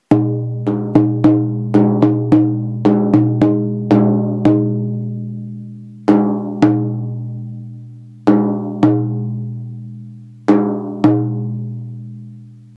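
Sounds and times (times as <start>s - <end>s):
large shaman drum: 0.0s - 12.4s.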